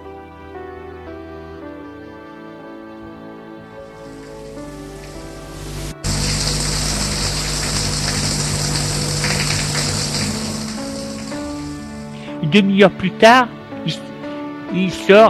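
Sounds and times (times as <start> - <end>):
shower spraying water in a bathroom: 3.9 - 12.2
speech: 12.5 - 14.1, 14.7 - 15.2.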